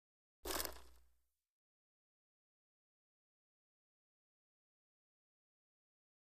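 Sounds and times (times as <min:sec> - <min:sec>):
roller blade wheels spinning while roller blading: 0:00.5 - 0:01.0.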